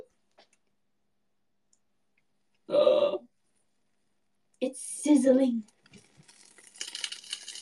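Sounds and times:
short vocal outbursts: 0:02.7 - 0:03.3
food sizzling in hot oven dish: 0:04.8 - 0:07.6
speech: 0:05.2 - 0:05.7.

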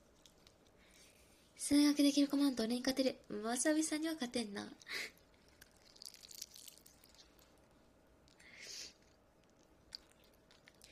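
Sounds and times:
speech: 0:01.7 - 0:05.2
slime being pressed and squished: 0:05.6 - 0:07.5.

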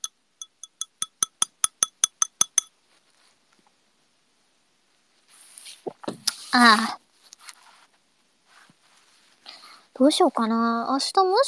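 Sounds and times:
glasses clinking in a toast: 0:00.0 - 0:02.7
soft rustle: 0:02.7 - 0:03.9, 0:04.8 - 0:10.2
speech: 0:06.5 - 0:07.0, 0:10.0 - 0:11.4.

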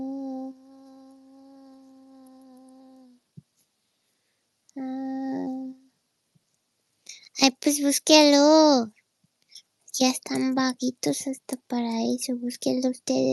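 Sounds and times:
housefly buzzing: 0:00.5 - 0:03.1
speech: 0:07.4 - 0:09.0, 0:10.0 - 0:13.3.

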